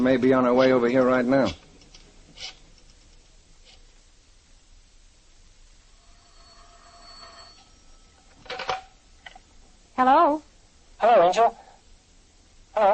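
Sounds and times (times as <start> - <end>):
speech: 0.0 - 1.6, 10.0 - 11.6, 12.8 - 12.9
soft hiss: 0.0 - 12.9
telephone ringing faintly: 6.0 - 9.0.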